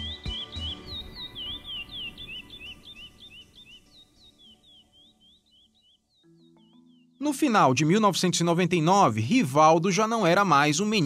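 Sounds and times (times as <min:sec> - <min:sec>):
small birds chirping: 0:00.0 - 0:11.0
speech: 0:07.2 - 0:11.0.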